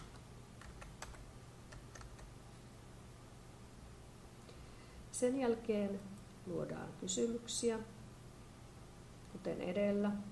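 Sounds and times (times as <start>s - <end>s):
computer keyboard typing: 0.0s - 2.3s
steady low electrical hum: 0.0s - 10.3s
speech: 5.2s - 8.0s, 9.4s - 10.3s.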